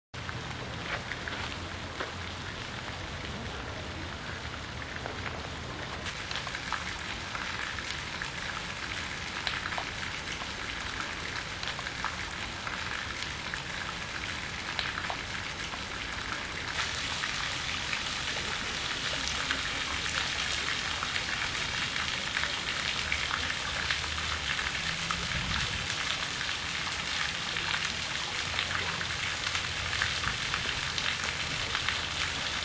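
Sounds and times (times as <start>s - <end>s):
baroque fountain water splashing in Trier: 0.2s - 32.6s.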